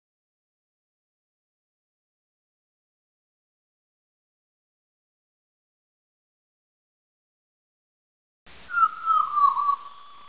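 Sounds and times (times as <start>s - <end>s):
gull giving a drawn-out mewing cry: 8.7s - 10.2s.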